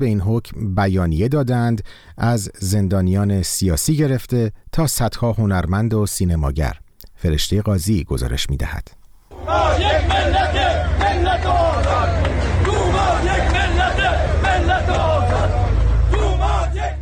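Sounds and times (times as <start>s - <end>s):
speech: 0.0s - 10.4s
crowd of retired social security workers chanting slogans at a rally in Ahvaz: 9.3s - 17.0s.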